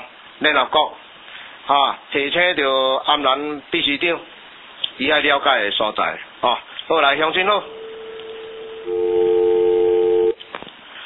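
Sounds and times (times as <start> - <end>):
speech: 0.4 - 1.1, 1.7 - 4.4, 5.0 - 7.8, 8.8 - 9.2
telephone ringing with electronic tone: 7.6 - 10.4.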